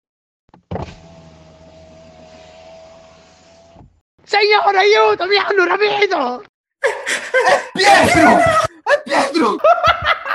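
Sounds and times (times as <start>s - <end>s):
car electric window motor whirring: 0.6s - 4.0s
speech: 4.4s - 10.2s
laughter: 6.8s - 10.3s.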